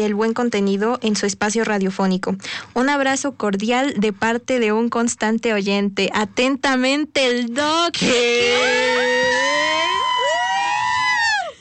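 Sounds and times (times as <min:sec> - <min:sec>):
speech: 0:00.0 - 0:09.1
wailing siren: 0:08.4 - 0:11.3.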